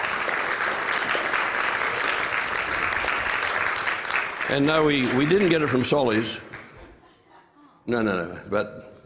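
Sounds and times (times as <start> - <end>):
audience applause: 0.0 - 7.0
speech: 4.5 - 6.5, 7.9 - 9.0.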